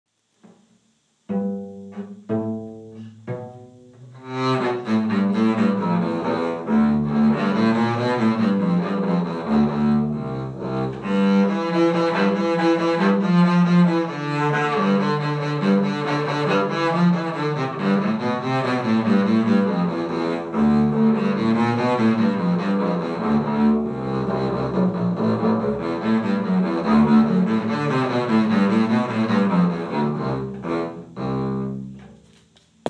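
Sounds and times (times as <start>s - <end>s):
double bass playing a polka: 0.5s - 32.2s.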